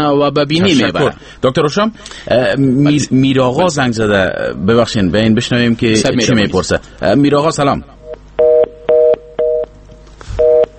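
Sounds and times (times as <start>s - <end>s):
speech: 0.0s - 8.0s
telephone busy tone after dropped call: 8.4s - 9.7s, 10.4s - 10.7s.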